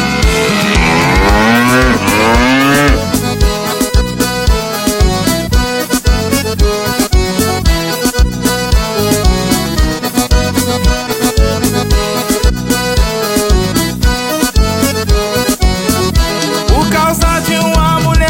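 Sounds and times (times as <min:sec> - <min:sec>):
loud rhythmic music with a steady beat: 0:00.0 - 0:18.2
cow mooing: 0:00.3 - 0:03.2.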